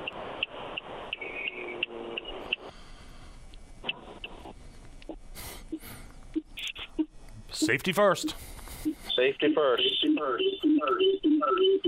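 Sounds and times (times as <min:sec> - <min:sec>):
tinny phone-line voice with loud echo: 0:07.5 - 0:08.4, 0:09.2 - 0:11.0
speech: 0:07.7 - 0:11.8.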